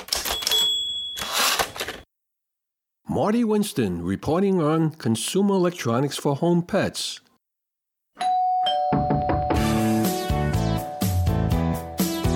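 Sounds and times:
doorbell chiming a sequence of bell-like tones: 0:00.3 - 0:01.5, 0:08.2 - 0:12.2
speech: 0:03.1 - 0:07.2.

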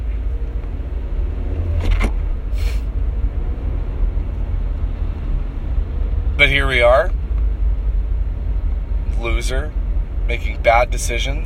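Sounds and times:
car road and engine rumble in traffic in Saskatoon: 0:00.0 - 0:11.4
short hiss: 0:02.5 - 0:02.9
speech: 0:06.4 - 0:07.2, 0:09.2 - 0:11.4.

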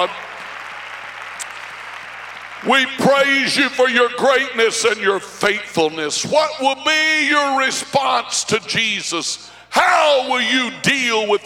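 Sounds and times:
speech: 0:00.0 - 0:00.2, 0:02.6 - 0:11.4
audience clapping hands: 0:00.0 - 0:03.7.

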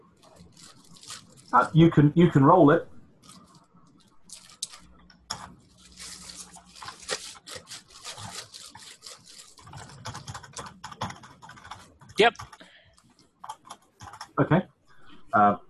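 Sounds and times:
speech: 0:01.5 - 0:02.9
typing on a computer keyboard: 0:07.2 - 0:14.4.

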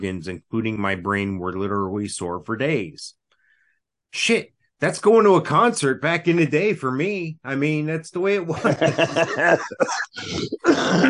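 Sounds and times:
speech: 0:00.0 - 0:03.2, 0:04.1 - 0:11.0
laughter: 0:08.5 - 0:10.4
man coughing and clearing throat: 0:09.3 - 0:11.0.

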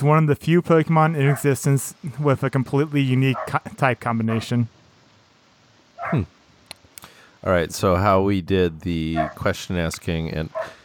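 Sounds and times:
speech: 0:00.0 - 0:04.8, 0:06.0 - 0:06.4, 0:07.4 - 0:10.8
single sharp dog bark: 0:01.2 - 0:01.6, 0:03.3 - 0:03.6, 0:04.3 - 0:04.6, 0:06.0 - 0:06.3, 0:09.2 - 0:09.5, 0:10.5 - 0:10.8
faint click: 0:06.6 - 0:07.2.

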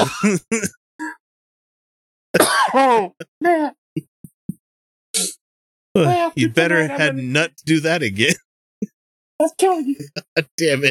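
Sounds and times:
laughter: 0:00.0 - 0:00.7, 0:02.7 - 0:03.2, 0:10.0 - 0:10.8
person clearing throat: 0:00.0 - 0:00.7, 0:02.4 - 0:03.2
speech: 0:00.0 - 0:00.8, 0:02.3 - 0:04.1, 0:06.0 - 0:08.4, 0:09.4 - 0:10.8.

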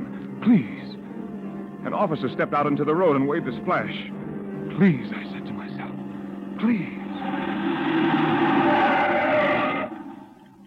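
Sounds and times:
speech: 0:00.4 - 0:00.9, 0:01.8 - 0:04.2, 0:04.8 - 0:05.4, 0:06.6 - 0:07.4
car tires squealing under hard braking: 0:07.0 - 0:10.5.

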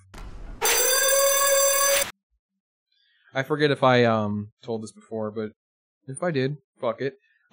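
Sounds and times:
gym lunk alarm ringing: 0:00.6 - 0:02.1
speech: 0:03.4 - 0:07.5.

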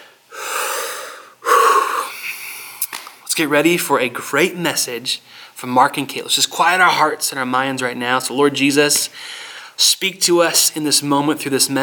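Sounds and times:
deep breath drawn during a church service: 0:00.0 - 0:02.9, 0:05.3 - 0:05.6, 0:09.1 - 0:09.8
speech: 0:03.4 - 0:11.8.

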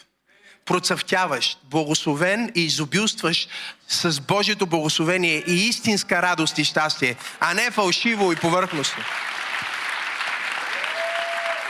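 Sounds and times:
speech: 0:00.0 - 0:09.4
dense steady audience applause: 0:07.4 - 0:11.6.

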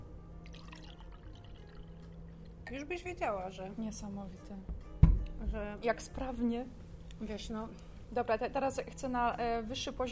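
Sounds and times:
low steady hum: 0:00.0 - 0:10.1
water pouring into a glass: 0:00.4 - 0:02.6
speech: 0:02.7 - 0:04.8, 0:05.4 - 0:10.1.

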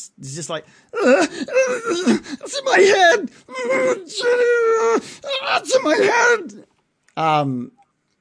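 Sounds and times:
speech: 0:00.0 - 0:07.8
human voice performing a monster's agonized scream: 0:01.0 - 0:06.6.

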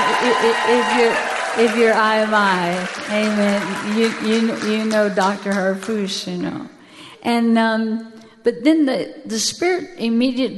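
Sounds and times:
audience clapping: 0:00.0 - 0:06.2
speech: 0:00.2 - 0:10.5.

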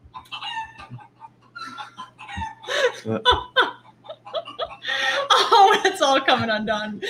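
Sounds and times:
chicken clucking and crowing: 0:00.0 - 0:05.2
faint steady hum: 0:00.0 - 0:07.0
speech: 0:03.0 - 0:03.5, 0:05.8 - 0:07.0.

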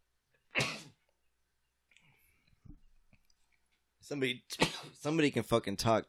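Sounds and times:
person sneezing: 0:00.6 - 0:01.0
speech: 0:04.1 - 0:06.0.

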